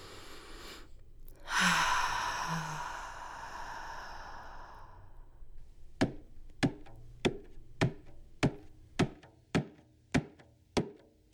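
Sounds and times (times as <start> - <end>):
deep breath: 0.0 - 9.2.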